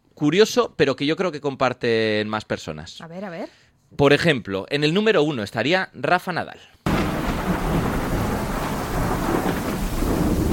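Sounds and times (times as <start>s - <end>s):
speech: 0.2s - 6.8s
deep rumble of thunder: 6.9s - 10.5s
heavy rain: 6.9s - 10.5s.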